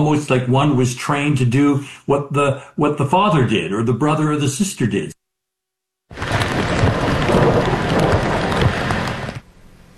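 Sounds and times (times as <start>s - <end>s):
speech: 0.0s - 5.2s
deep thunder rumbling: 6.1s - 9.5s
heavy rain downpour: 6.1s - 9.9s.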